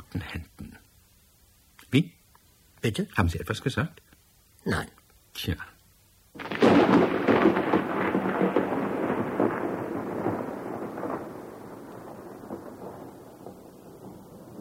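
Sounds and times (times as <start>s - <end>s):
steady rain: 0.0s - 14.6s
speech: 0.1s - 0.5s, 1.9s - 2.2s, 2.8s - 4.0s, 4.6s - 5.7s
thunder rumbling: 6.4s - 14.6s.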